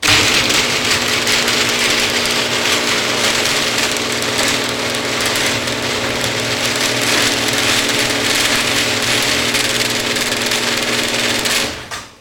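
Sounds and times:
garage door: 0:00.0 - 0:12.2.

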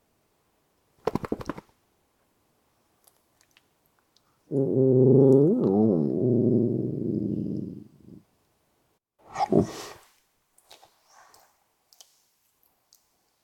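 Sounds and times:
Miniature Dachshund growling low: 0:04.5 - 0:08.2
Miniature Dachshund loud rough vocal burst: 0:09.3 - 0:10.0.

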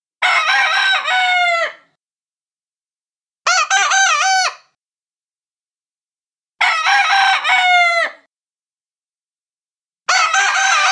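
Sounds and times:
rooster crowing: 0:00.2 - 0:01.9, 0:03.5 - 0:04.7, 0:06.6 - 0:08.3, 0:10.1 - 0:10.9.

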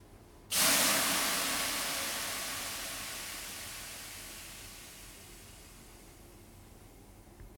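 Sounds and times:
sauna steam hissing: 0:00.5 - 0:06.0.

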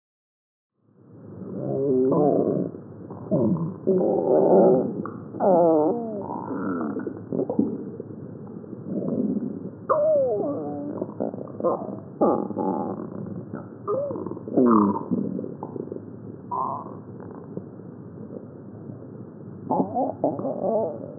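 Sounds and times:
stomach rumbling: 0:01.4 - 0:18.6, 0:19.7 - 0:21.1.

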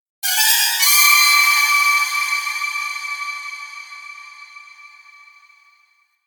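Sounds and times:
dramatic violin stab with long decay: 0:00.2 - 0:05.5.

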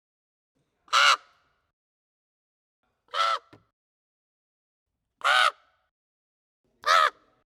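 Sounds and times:
raven giving harsh hoarse caws: 0:00.9 - 0:01.4, 0:03.1 - 0:03.6, 0:05.2 - 0:05.7, 0:06.8 - 0:07.2.

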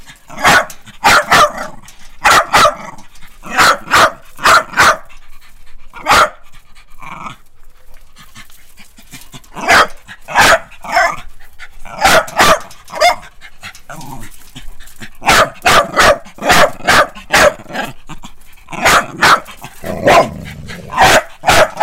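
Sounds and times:
dog barking: 0:00.3 - 0:05.1, 0:06.0 - 0:06.4, 0:09.6 - 0:11.2, 0:11.9 - 0:13.2, 0:15.2 - 0:17.9, 0:18.8 - 0:21.8.

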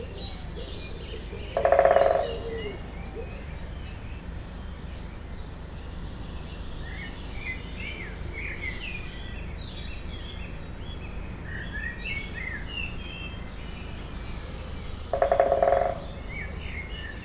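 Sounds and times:
birds chirping: 0:00.0 - 0:17.2
woodpecker drumming: 0:01.5 - 0:02.7, 0:15.0 - 0:16.5.

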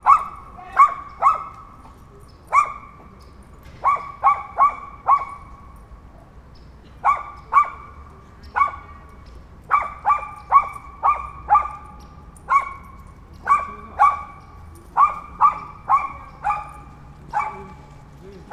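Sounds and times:
small dog barking in a park: 0:00.0 - 0:01.7, 0:02.5 - 0:03.0, 0:03.8 - 0:05.5, 0:07.0 - 0:07.9, 0:09.7 - 0:11.9, 0:12.5 - 0:14.4, 0:15.0 - 0:18.5.

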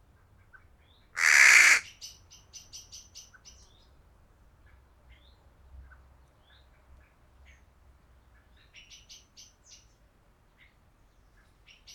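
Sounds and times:
crow giving a loud hoarse caw: 0:01.2 - 0:01.8.

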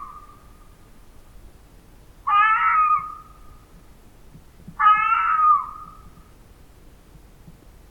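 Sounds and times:
fox cries: 0:02.3 - 0:03.2, 0:04.8 - 0:06.0.

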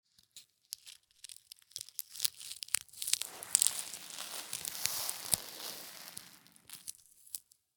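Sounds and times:
paint peeling: 0:03.1 - 0:07.2.

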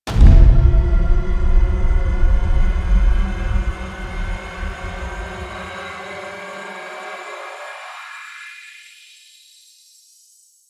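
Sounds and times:
double trailer hit: 0:00.0 - 0:08.1.

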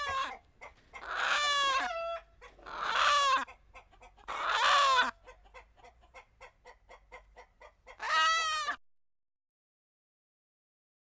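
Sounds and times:
chicken giving harsh squawks: 0:00.0 - 0:08.8.

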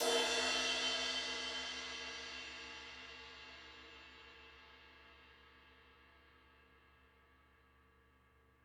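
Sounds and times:
ride cymbal ping: 0:00.0 - 0:03.1
crash cymbal: 0:00.0 - 0:07.0.

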